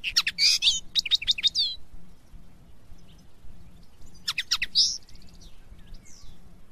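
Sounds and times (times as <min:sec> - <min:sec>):
linnet twittering: 0:00.0 - 0:01.8, 0:03.8 - 0:06.4
faint low background hum: 0:00.0 - 0:06.6.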